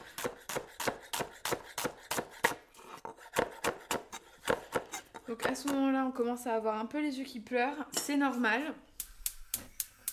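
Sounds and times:
knife finely slicing onions into very small pieces: 0:00.0 - 0:05.8
speech: 0:05.3 - 0:08.9.

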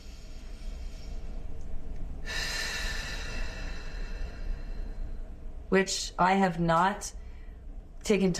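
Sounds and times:
deep breathing: 0:00.0 - 0:05.6
low hum: 0:00.0 - 0:08.3
speech: 0:05.7 - 0:07.2, 0:08.0 - 0:08.3.

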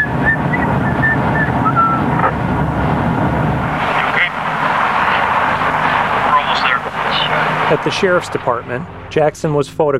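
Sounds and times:
person whistling casually in car back seat: 0:00.0 - 0:02.1
moving vehicle engine and road noise: 0:00.0 - 0:09.7
speech: 0:07.7 - 0:09.9.

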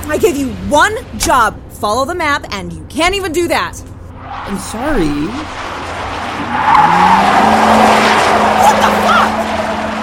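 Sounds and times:
truck engine rumble: 0:00.0 - 0:10.0
speech: 0:00.1 - 0:05.7, 0:06.4 - 0:07.8
speeding truck tires squealing in a skid: 0:05.4 - 0:10.0.

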